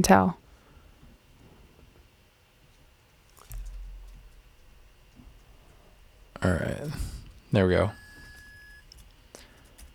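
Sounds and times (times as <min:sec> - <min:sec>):
speech: 0:00.0 - 0:00.4, 0:06.4 - 0:08.0
heating pad electronic beep: 0:06.4 - 0:09.0.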